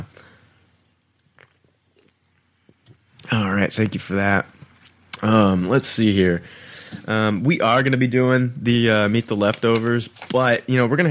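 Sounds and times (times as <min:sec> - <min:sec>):
low room hiss: 0:00.0 - 0:11.0
person sipping a drink: 0:01.2 - 0:03.0
speech: 0:03.3 - 0:04.6, 0:05.2 - 0:11.0.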